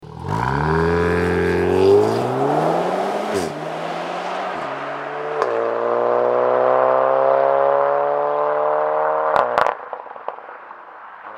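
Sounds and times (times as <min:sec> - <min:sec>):
Golf VII R Variant with catback exhaust system driving off: 0:00.0 - 0:09.8.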